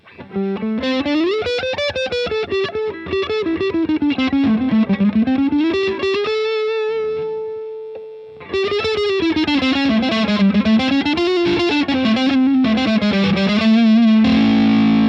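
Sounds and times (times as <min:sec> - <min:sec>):
electric guitar with crunch overdrive playing a melodic run: 0:00.0 - 0:15.0.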